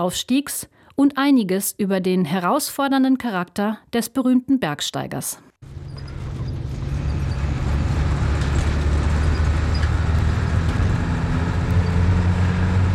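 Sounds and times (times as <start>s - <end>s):
speech: 0.0s - 5.5s
bus engine labouring up winding mountain roads between Kathmandu and Pokhara: 5.6s - 12.9s.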